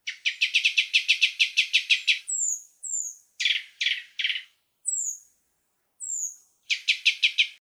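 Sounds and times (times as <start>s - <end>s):
Japanese thrush singing: 0.0s - 5.2s, 6.0s - 7.6s.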